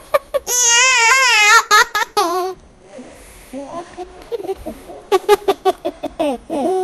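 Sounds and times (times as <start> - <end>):
children laughing: 0.2 - 2.6, 4.3 - 6.6.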